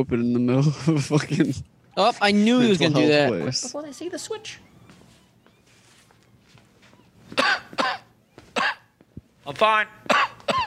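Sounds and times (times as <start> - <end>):
speech: 0.0 - 4.7, 9.5 - 10.3
harsh coughs with throat clearing: 7.3 - 8.9, 10.1 - 10.6.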